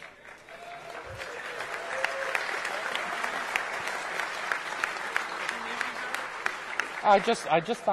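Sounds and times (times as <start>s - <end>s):
audience applauding in a large room: 0.0s - 7.9s
speech: 7.0s - 7.9s.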